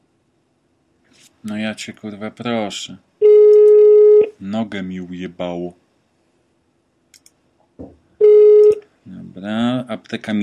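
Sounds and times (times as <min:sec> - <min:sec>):
speech: 0:01.4 - 0:03.1, 0:04.4 - 0:05.8, 0:09.4 - 0:10.4
telephone busy signal after dialing a pharmacy's number: 0:03.2 - 0:04.3, 0:08.2 - 0:08.8
brief knock: 0:07.8 - 0:08.0.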